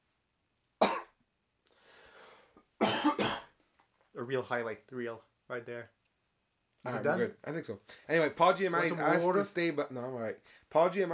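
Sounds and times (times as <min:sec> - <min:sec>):
harsh coughs: 0:00.8 - 0:01.2, 0:02.8 - 0:03.6
speech: 0:04.3 - 0:06.0, 0:06.8 - 0:11.1.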